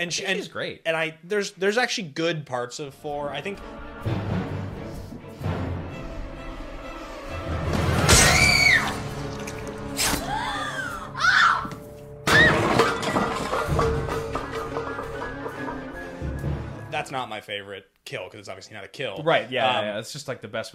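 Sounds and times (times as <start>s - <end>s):
speech: 0.0s - 4.4s, 17.1s - 20.7s
tense, crashing film soundtrack: 2.8s - 17.0s
sharp shattering impact: 7.8s - 10.2s, 12.3s - 15.0s
woman screaming in a film scene: 8.1s - 9.0s, 10.1s - 12.7s.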